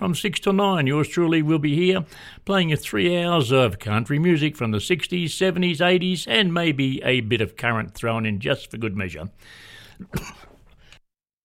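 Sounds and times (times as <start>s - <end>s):
speech: 0.0s - 10.5s
radio host clearing throat: 10.0s - 10.6s.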